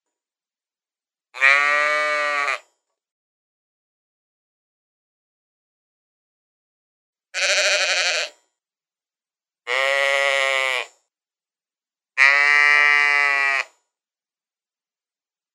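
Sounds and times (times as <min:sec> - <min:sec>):
sheep bleating: 0:01.4 - 0:02.6, 0:07.4 - 0:08.4, 0:09.7 - 0:10.9, 0:12.2 - 0:13.7.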